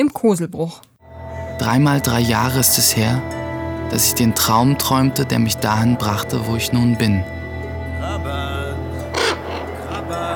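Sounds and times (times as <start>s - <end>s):
speech: 0.0s - 0.9s, 1.6s - 7.4s
low steady droning background: 1.0s - 10.3s
ravens cawing harshly: 9.0s - 10.3s.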